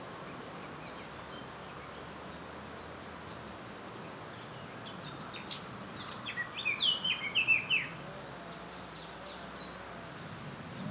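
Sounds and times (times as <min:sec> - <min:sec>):
Eurasian blackcap Sylvia atricapilla song: 0:05.2 - 0:07.8.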